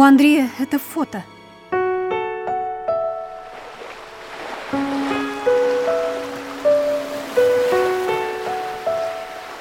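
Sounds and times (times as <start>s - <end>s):
speech: 0.0s - 1.4s
gentle piano-like melodic notes: 0.0s - 9.6s
calm sea lapping against rocks: 3.4s - 9.6s.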